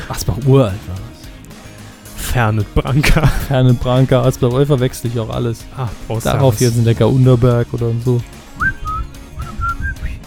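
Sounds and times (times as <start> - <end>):
speech: 0.1 - 0.9, 2.3 - 8.7
laughter: 2.8 - 3.8
person whistling a short jingle melody: 8.6 - 10.2.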